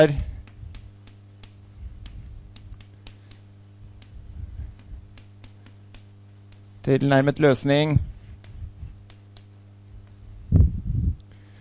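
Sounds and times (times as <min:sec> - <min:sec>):
speech: 0:00.0 - 0:00.3, 0:06.8 - 0:08.1
pen scratching on paper writing an answer in a maths lesson: 0:00.4 - 0:06.8, 0:08.2 - 0:10.5.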